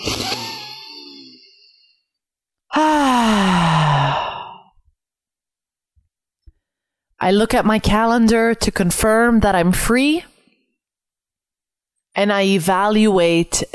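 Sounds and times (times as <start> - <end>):
deep breath taken before answering a question: 2.7 - 4.7
speech: 7.2 - 10.3, 12.2 - 13.7.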